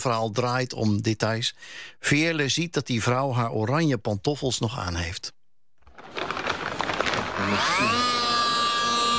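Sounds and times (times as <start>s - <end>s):
speech: 0.0s - 5.4s, 7.4s - 8.3s
electric saw cutting open a skull: 7.3s - 9.1s.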